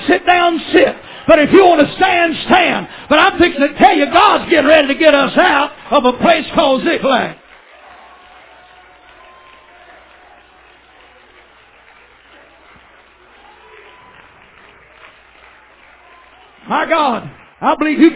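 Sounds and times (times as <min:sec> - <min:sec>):
speech: 0:00.1 - 0:07.4, 0:16.7 - 0:18.1
large group applauding: 0:07.1 - 0:18.1
faint crowd murmur: 0:07.6 - 0:16.7.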